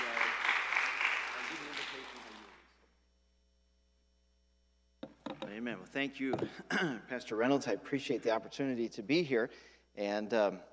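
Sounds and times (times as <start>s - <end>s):
audience applause: 0.0s - 2.7s
speech: 5.6s - 10.7s.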